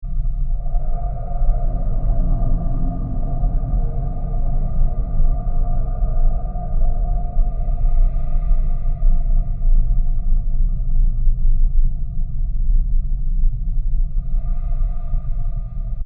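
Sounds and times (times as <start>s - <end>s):
deep spacey ambience: 0.0s - 16.0s
wobbling bass whooshes: 1.1s - 6.6s.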